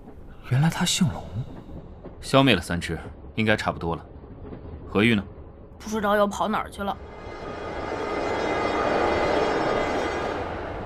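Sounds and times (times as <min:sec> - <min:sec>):
train rumbling and rolling into terminal station in Changchun: 0:00.0 - 0:05.5, 0:06.9 - 0:10.8
speech: 0:00.5 - 0:01.6, 0:02.2 - 0:04.1, 0:04.9 - 0:07.4.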